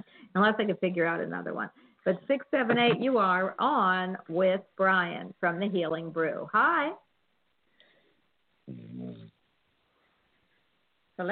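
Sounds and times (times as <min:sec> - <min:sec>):
speech: 0:00.4 - 0:07.0, 0:11.2 - 0:11.3
person snoring over a telephone line: 0:08.7 - 0:09.3.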